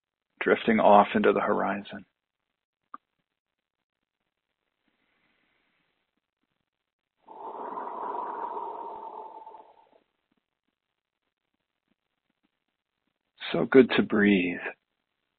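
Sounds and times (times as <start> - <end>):
speech: 0.4 - 2.1, 13.6 - 14.8
slow exhale blown out through the mouth: 7.3 - 10.0
soft intake of breath: 7.3 - 10.0.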